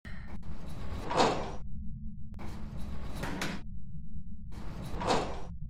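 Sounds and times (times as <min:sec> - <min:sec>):
prison door: 0:00.1 - 0:01.6, 0:02.4 - 0:03.6, 0:04.5 - 0:05.5.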